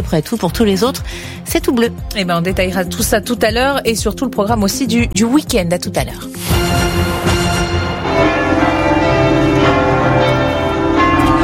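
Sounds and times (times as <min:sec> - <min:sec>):
speech: 0:00.0 - 0:07.8
several church bells pealing: 0:07.3 - 0:11.4.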